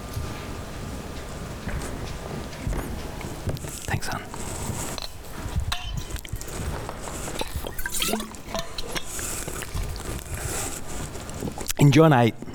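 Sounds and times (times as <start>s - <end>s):
steady hiss: 0.0s - 12.5s
speech: 3.9s - 4.5s, 11.8s - 12.5s
drinking water being poured or sipped: 6.2s - 11.8s.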